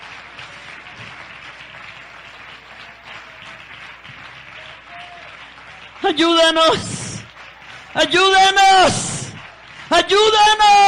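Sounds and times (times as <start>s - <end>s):
audience applauding in a large room: 0.0s - 10.8s
speech: 6.0s - 7.0s, 8.0s - 9.1s, 9.9s - 10.8s.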